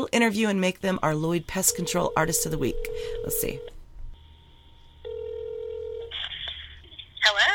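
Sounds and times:
speech: 0:00.0 - 0:03.8
steady electronic phone tone: 0:01.6 - 0:06.2.

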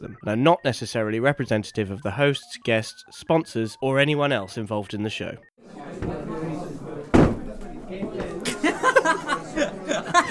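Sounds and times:
speech: 0:00.2 - 0:06.2
people chattering: 0:05.6 - 0:10.2
crash and clatter of someone toppling backwards in a chair: 0:07.1 - 0:08.3
people laughing: 0:08.0 - 0:10.2.

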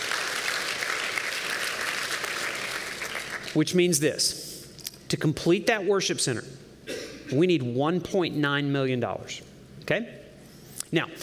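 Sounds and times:
audience applause: 0:00.0 - 0:03.6
speech: 0:03.6 - 0:04.4, 0:05.1 - 0:06.6, 0:07.3 - 0:10.2, 0:10.9 - 0:11.2.

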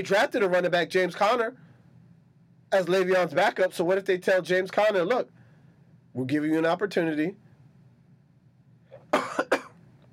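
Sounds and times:
speech: 0:00.0 - 0:01.7, 0:02.7 - 0:05.4, 0:06.2 - 0:07.4
faint low hum: 0:00.0 - 0:10.1
person coughing harshly: 0:09.0 - 0:09.8.

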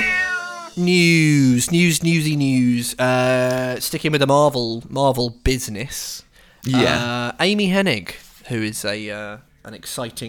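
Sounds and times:
cat meowing: 0:00.0 - 0:00.7
speech: 0:00.8 - 0:10.2.

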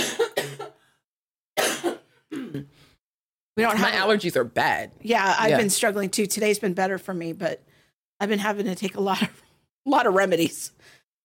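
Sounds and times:
person coughing: 0:00.0 - 0:00.8, 0:01.6 - 0:02.8
speech: 0:03.6 - 0:11.0.

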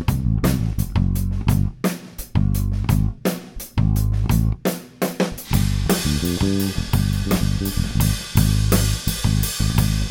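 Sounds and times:
bass guitar with white nylon tapewound strings recorded direct: 0:00.0 - 0:04.7, 0:05.3 - 0:10.1
bright wash of cymbals: 0:05.2 - 0:10.1.

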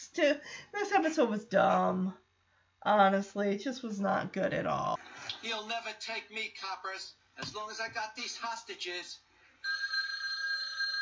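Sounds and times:
speech: 0:00.1 - 0:02.2, 0:02.8 - 0:09.3
telephone ringing with a bright electronic trill: 0:09.6 - 0:10.9.

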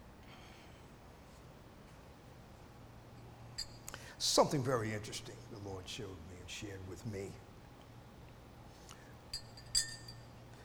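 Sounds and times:
speech: 0:04.2 - 0:07.5
metal spoon tapping against a glass of water: 0:09.3 - 0:10.4.

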